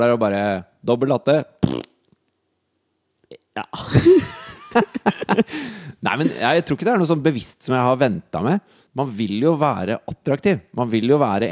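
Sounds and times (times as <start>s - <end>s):
speech: 0.0s - 1.8s, 3.6s - 11.4s
voice making a short loud buzzy fart imitation: 1.6s - 2.0s
laughter: 3.8s - 6.7s.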